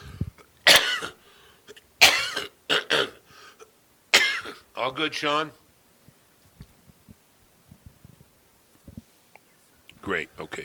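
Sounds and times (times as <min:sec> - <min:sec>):
person coughing: 0:00.7 - 0:01.2, 0:02.0 - 0:03.2, 0:04.2 - 0:04.6
speech: 0:04.8 - 0:05.6, 0:10.1 - 0:10.6.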